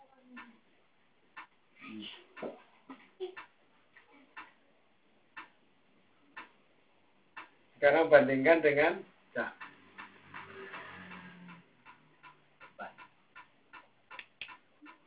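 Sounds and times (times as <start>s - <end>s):
metronome ticking at one beat per second: 0.3s - 0.6s, 1.4s - 1.6s, 2.3s - 3.6s, 4.3s - 4.6s, 5.3s - 6.6s, 7.3s - 15.0s
speech: 7.8s - 9.6s.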